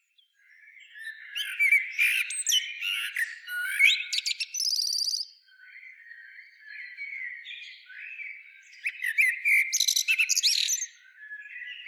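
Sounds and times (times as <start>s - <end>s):
common blackbird singing warbled whistled notes and trilled twitter: 0.2s - 11.8s.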